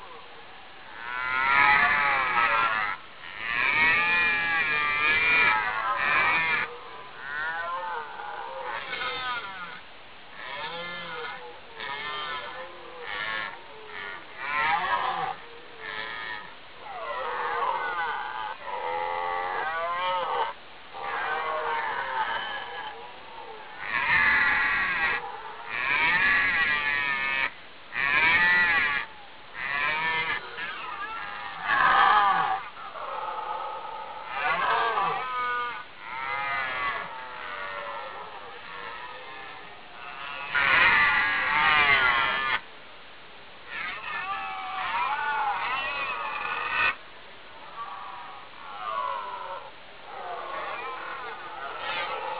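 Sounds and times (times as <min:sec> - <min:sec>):
deer roaring: 0:00.9 - 0:42.7, 0:43.7 - 0:47.0, 0:47.6 - 0:52.3.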